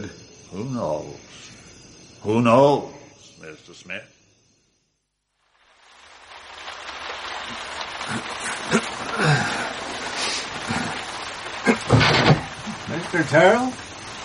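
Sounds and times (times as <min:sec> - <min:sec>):
speech: 0:00.0 - 0:01.6, 0:02.2 - 0:04.2, 0:13.1 - 0:13.8
well water sprayed from a garden hose onto a roof: 0:05.4 - 0:14.2.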